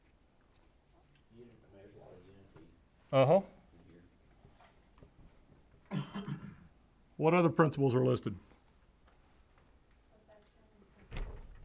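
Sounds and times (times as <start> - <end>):
speech: 1.4 - 3.6, 7.2 - 8.5
door slamming shut: 11.1 - 11.6.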